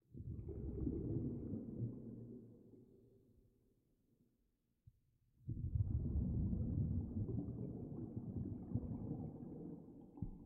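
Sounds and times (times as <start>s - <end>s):
underwater bubble: 0.1s - 2.9s, 5.4s - 10.4s.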